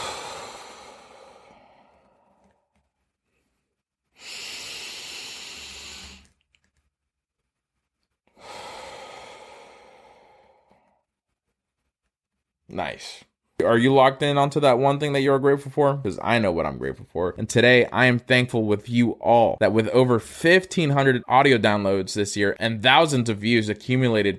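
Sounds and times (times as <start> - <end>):
deep breathing in through the nose and out: 0.0 - 6.4, 8.3 - 11.8
speech: 12.8 - 24.3.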